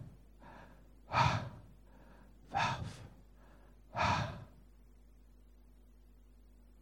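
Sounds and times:
breath exhaled as an imitation of pronouncing the Hebrew name of God: 0.0s - 3.2s, 4.0s - 4.6s.

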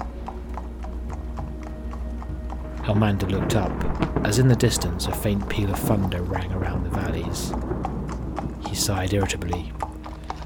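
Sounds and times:
horse hooves clip-clopping at a walk: 0.0s - 10.4s
speech: 2.9s - 9.9s.

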